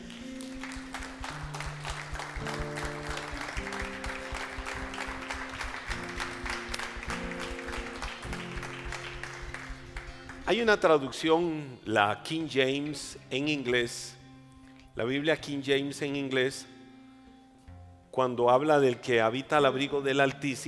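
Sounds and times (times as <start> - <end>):
audience applauding: 0.0 - 10.8
sustained keyboard chords: 0.0 - 11.0
speech: 10.5 - 14.2, 15.0 - 16.7, 18.2 - 20.6.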